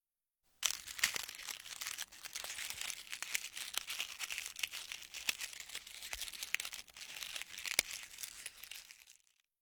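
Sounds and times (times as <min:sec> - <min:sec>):
thin crispy food being bitten and crunched: 0:00.6 - 0:09.5.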